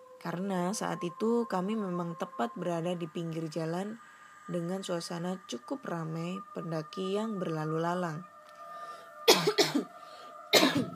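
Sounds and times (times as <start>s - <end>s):
faint steady hum: 0.0s - 10.9s
speech: 0.2s - 8.3s
person coughing: 9.3s - 9.9s, 10.5s - 10.9s.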